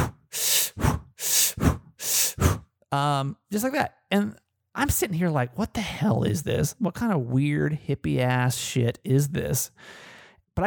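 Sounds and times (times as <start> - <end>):
person doing a breathing exercise on a yoga mat: 0.0 - 2.6, 9.8 - 10.4
speech: 2.9 - 10.6.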